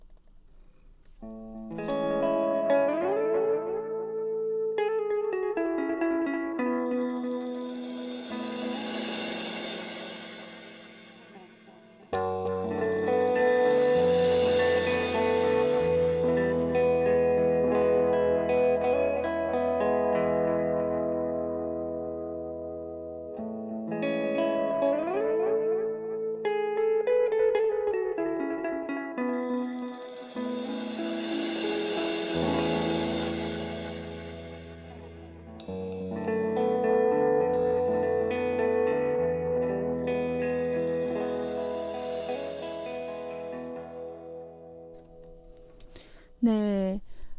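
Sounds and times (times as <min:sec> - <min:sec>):
indie song with layered effect-washed guitar tones: 0:00.0 - 0:46.4.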